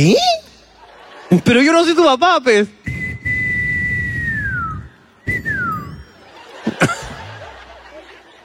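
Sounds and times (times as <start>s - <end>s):
speech: 0.0s - 0.4s, 1.3s - 2.8s
laughter: 0.5s - 2.1s, 6.0s - 8.4s
person whistling two descending tones: 2.9s - 6.0s.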